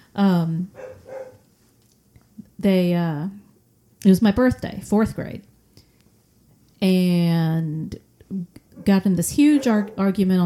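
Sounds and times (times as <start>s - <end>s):
speech: 0.2s - 0.8s, 2.6s - 3.4s, 4.0s - 5.5s, 6.8s - 10.4s
puppies barking: 0.8s - 1.4s, 8.8s - 10.2s.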